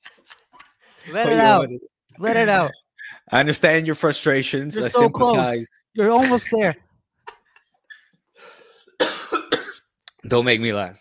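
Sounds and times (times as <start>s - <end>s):
speech: 1.0s - 6.8s, 10.2s - 11.0s
person with whooping cough coughing harshly: 9.0s - 9.9s.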